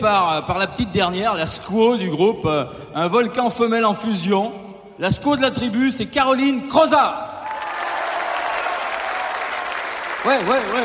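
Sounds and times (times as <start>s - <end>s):
speech: 0.0s - 7.3s, 10.2s - 10.8s
large audience applauding: 7.4s - 10.8s.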